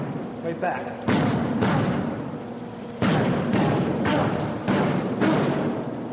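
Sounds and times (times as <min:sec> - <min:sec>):
heavy thuds of kicks in a self-defense demonstration: 0:01.1 - 0:02.3, 0:03.0 - 0:05.9.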